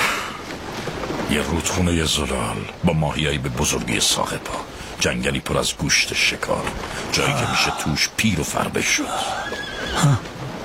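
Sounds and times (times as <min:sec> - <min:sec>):
speech: 0:01.3 - 0:10.3
horse neighing: 0:09.0 - 0:10.4.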